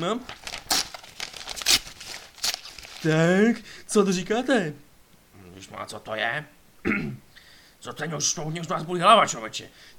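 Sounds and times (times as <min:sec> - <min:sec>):
speech: 0:00.0 - 0:00.4, 0:03.0 - 0:04.8, 0:05.6 - 0:09.9
wrapping paper crinkling and tearing as a package is unwrapped: 0:00.0 - 0:03.2.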